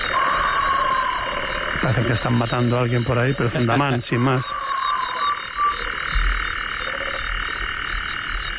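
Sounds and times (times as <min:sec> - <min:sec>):
chorus of frogs at night: 0:00.0 - 0:08.5
insects at night: 0:00.0 - 0:08.5
toad calling at night: 0:00.0 - 0:08.5
speech: 0:01.8 - 0:04.6.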